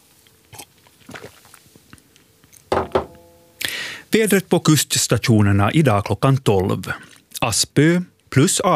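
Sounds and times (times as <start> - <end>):
soft mouth and swallowing noises: 0.5 - 2.7
quiet sip of water: 1.0 - 1.6
sharp knocks of a glass being handled: 2.7 - 3.5
faint ringing tone: 3.0 - 3.7
speech: 4.2 - 8.7.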